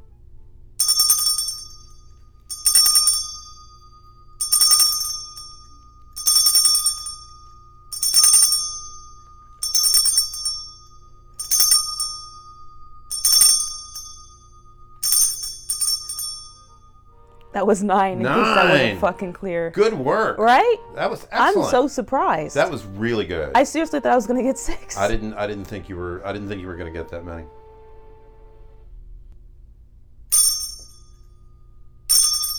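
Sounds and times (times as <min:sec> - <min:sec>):
bright ringing chime: 0:00.8 - 0:17.6, 0:30.3 - 0:32.5
speech: 0:17.6 - 0:27.6.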